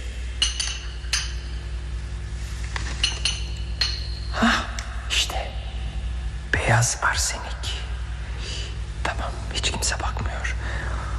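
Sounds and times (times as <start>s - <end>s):
low hum: 0.0s - 11.1s
glass bottles clinking inside a poison cabinet while searching for a bottle: 0.4s - 1.7s, 2.8s - 4.4s
speech: 6.7s - 7.6s, 9.6s - 10.8s.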